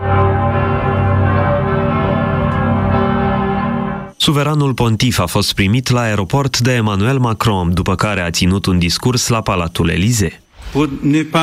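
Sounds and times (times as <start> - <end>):
church bells of Paris led by Notre-Dame ringing for the Pope's pilgrimage: 0.0 - 4.2
speech: 4.2 - 11.4.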